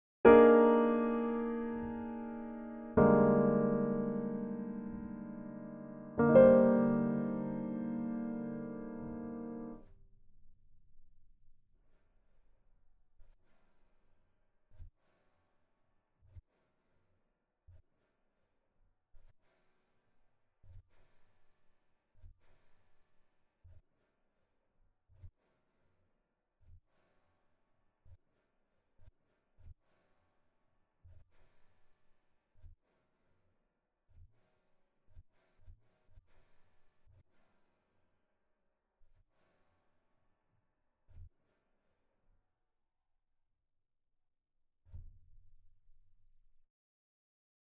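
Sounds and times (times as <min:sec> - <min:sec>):
diatonic music composition: 0:00.3 - 0:09.8.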